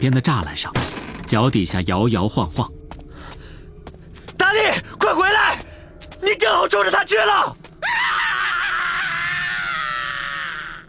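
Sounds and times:
speech: 0:00.0 - 0:02.8, 0:04.6 - 0:05.6, 0:06.3 - 0:07.6
terrible shrill piercing scream in a dark alley: 0:06.8 - 0:10.8.

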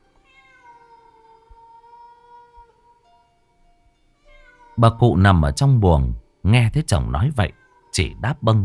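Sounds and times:
stray cats yowling: 0:00.2 - 0:03.0, 0:04.2 - 0:05.1, 0:07.5 - 0:08.2
speech: 0:04.8 - 0:08.6.

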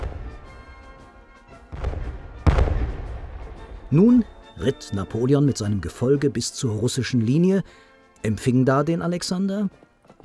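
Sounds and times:
cannons firing in salute: 0:00.0 - 0:00.8, 0:01.8 - 0:04.5
speech: 0:03.9 - 0:09.8.

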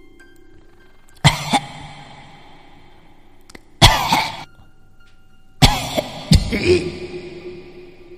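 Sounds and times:
raspy wheezing coughing like a person with long-standing asthma: 0:01.2 - 0:01.9, 0:03.8 - 0:04.5, 0:05.6 - 0:07.1.

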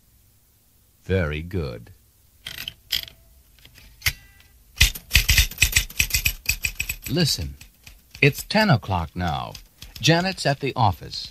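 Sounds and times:
speech: 0:01.0 - 0:02.0, 0:07.1 - 0:07.6, 0:08.2 - 0:11.2
office typewriter typing: 0:04.8 - 0:11.2.

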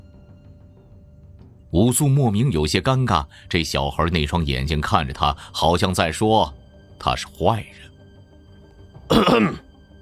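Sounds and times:
speech: 0:01.7 - 0:07.9, 0:09.1 - 0:09.6
man coughing: 0:09.1 - 0:09.7.

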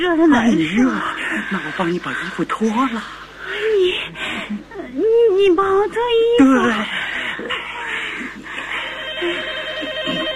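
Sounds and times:
speech: 0:00.0 - 0:07.5
telephone ringing with an electronic trill: 0:08.7 - 0:10.3.

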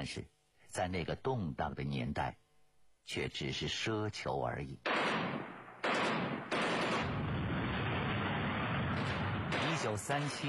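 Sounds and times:
speech: 0:00.0 - 0:02.4, 0:03.1 - 0:05.2, 0:09.9 - 0:10.4
gunfire from a battle: 0:04.8 - 0:10.4
artillery fire from a battle: 0:04.9 - 0:10.4.

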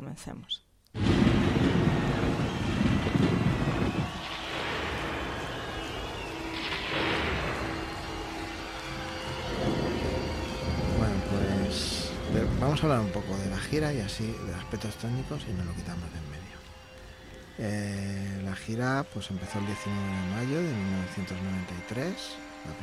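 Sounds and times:
speech: 0:00.1 - 0:02.0, 0:12.6 - 0:16.6, 0:17.6 - 0:22.8
deep rolling thunder: 0:01.0 - 0:14.9.

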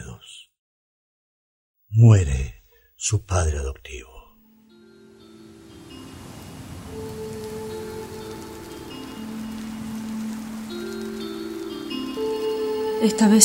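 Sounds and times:
speech: 0:01.9 - 0:04.2, 0:13.0 - 0:13.4
steady rain: 0:05.1 - 0:13.4.

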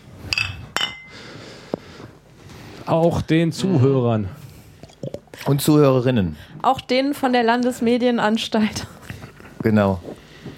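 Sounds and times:
glasses clinking together in a toast: 0:00.3 - 0:01.1
speech: 0:02.9 - 0:04.4, 0:05.5 - 0:09.0, 0:09.6 - 0:10.1.

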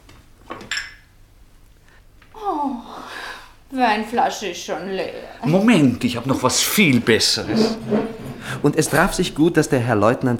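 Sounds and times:
speech: 0:03.7 - 0:10.3
ceramic plates clinking as plates are changed at a dinner table: 0:06.6 - 0:09.5.

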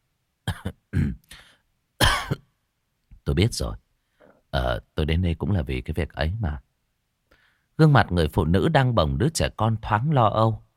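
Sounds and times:
young man clearing his throat: 0:00.5 - 0:02.5
young man coughing in short rasping bursts: 0:00.5 - 0:02.5
speech: 0:03.3 - 0:03.8, 0:04.5 - 0:06.7, 0:07.8 - 0:10.6.

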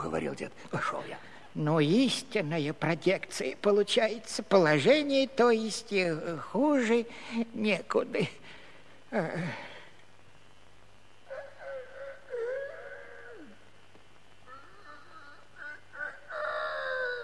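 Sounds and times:
speech: 0:00.0 - 0:08.5, 0:09.1 - 0:09.7
rooster crowing: 0:11.3 - 0:13.6, 0:15.6 - 0:17.2.

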